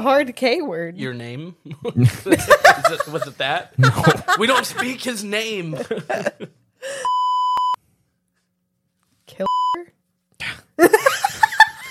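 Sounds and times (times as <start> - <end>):
speech: 0.0 - 7.2
people laughing: 1.7 - 6.6
censor beep over spoken word: 7.1 - 7.8, 9.4 - 9.8.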